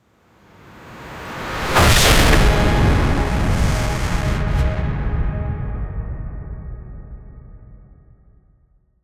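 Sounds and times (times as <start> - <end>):
artillery fire: 1.6 - 5.1
cinematic war sounds: 1.6 - 7.1.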